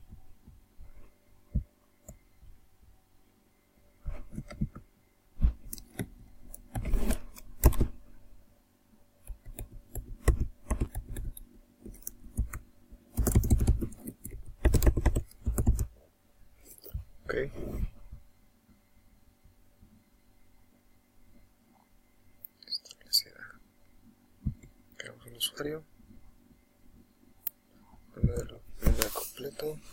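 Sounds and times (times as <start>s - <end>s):
low steady hum: 0.0s - 29.9s
password being typed on a computer keyboard: 5.7s - 7.8s, 9.3s - 15.9s
speech: 25.5s - 25.9s, 29.6s - 29.9s.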